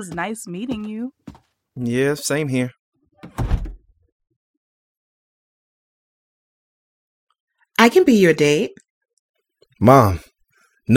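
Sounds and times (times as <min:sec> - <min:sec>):
speech: 0:00.0 - 0:03.5, 0:07.8 - 0:08.8, 0:09.8 - 0:10.3
door closing as someone leaves: 0:03.2 - 0:03.8.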